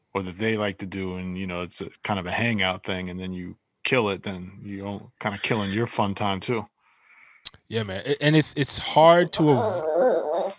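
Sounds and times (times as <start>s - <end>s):
speech: 0.2s - 6.7s, 7.4s - 10.3s
dog whining: 9.5s - 10.5s.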